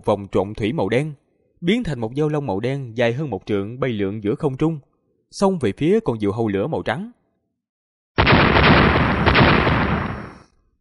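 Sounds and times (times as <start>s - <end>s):
speech: 0.0s - 7.2s
rumbling explosion bursting in midair: 8.2s - 10.4s.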